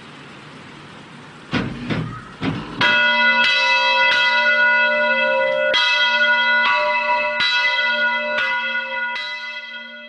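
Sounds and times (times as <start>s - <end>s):
brief knocking sounds: 1.5s - 3.0s
church bell ringing: 2.8s - 10.0s.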